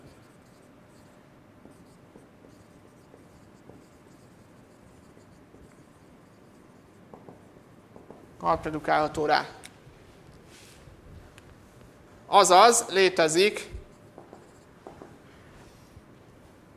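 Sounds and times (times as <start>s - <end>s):
writing scratching on a board during a lecture: 0.0s - 8.3s, 13.9s - 16.0s
speech: 8.4s - 9.6s, 12.3s - 13.8s.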